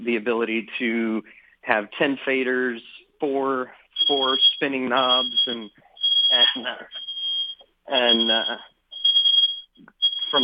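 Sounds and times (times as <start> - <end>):
speech: 0.0 - 7.0, 7.9 - 8.7, 9.8 - 10.4
smoke detector alarm high-pitched electronic tone: 3.8 - 10.4.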